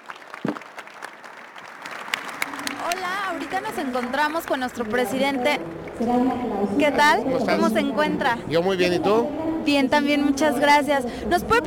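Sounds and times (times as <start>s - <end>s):
audience applause for panelists at a conference panel: 0.0s - 6.3s
speech: 2.9s - 11.6s.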